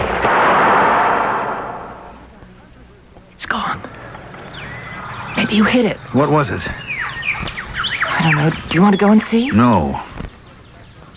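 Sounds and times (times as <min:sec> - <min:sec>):
pistol gunshot: 0:00.0 - 0:02.3
speech: 0:05.5 - 0:06.9, 0:08.2 - 0:10.1.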